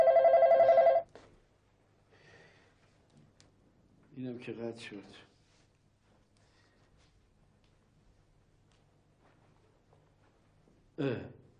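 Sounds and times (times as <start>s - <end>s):
telephone ringing with an electronic warble: 0.0s - 1.1s
speech: 4.2s - 5.3s, 11.0s - 11.4s.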